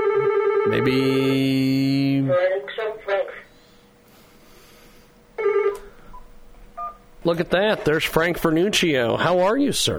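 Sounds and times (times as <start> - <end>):
telephone ringing with an incoming call: 0.0 - 1.6, 5.4 - 7.1
speech: 0.7 - 3.4, 7.2 - 9.9.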